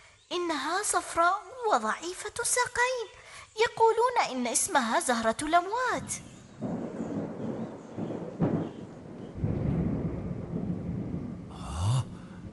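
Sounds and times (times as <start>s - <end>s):
speech: 0.3s - 6.3s
deep rolling thunder in a thunderstorm: 6.5s - 12.5s.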